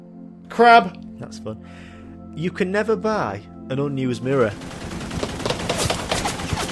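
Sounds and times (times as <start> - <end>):
speech: 0.6 - 4.8
rapid automatic gunfire sound effect: 4.5 - 6.7.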